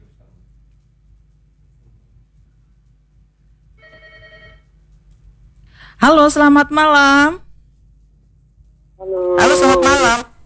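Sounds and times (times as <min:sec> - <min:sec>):
telephone ringing for an incoming call: 0:03.8 - 0:04.6
speech: 0:06.0 - 0:07.4, 0:09.4 - 0:10.3.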